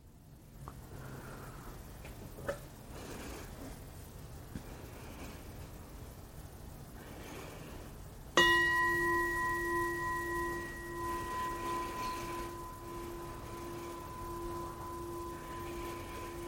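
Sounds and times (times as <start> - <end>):
faint breathing: 0.7 - 2.0, 2.8 - 3.9, 4.5 - 6.2, 6.8 - 8.2, 8.8 - 16.4
meditation bell ringing to close a meditation session: 8.4 - 16.4.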